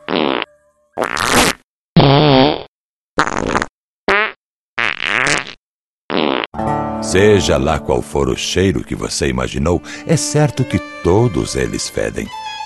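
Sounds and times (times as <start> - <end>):
loud buzzy farts: 0.1 - 6.5
speech: 7.1 - 12.6.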